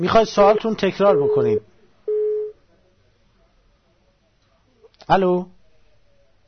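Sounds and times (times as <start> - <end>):
speech: 0.0 - 1.7, 5.1 - 5.6
faint low noise: 0.0 - 6.4
telephone busy tone after a call-in phone line drops: 1.2 - 2.5.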